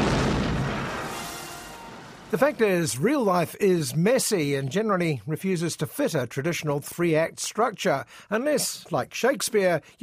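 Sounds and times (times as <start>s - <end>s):
heavy cannon fired by a gunner with a linstock: 0.0s - 2.6s
speech: 2.3s - 10.0s.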